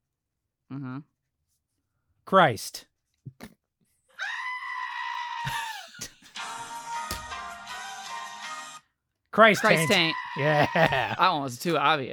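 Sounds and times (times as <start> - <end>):
speech: 0.7 - 1.2, 2.3 - 3.6, 9.4 - 12.1
person screaming: 4.2 - 6.1, 9.6 - 11.2
laughter: 5.4 - 6.6, 9.5 - 11.7.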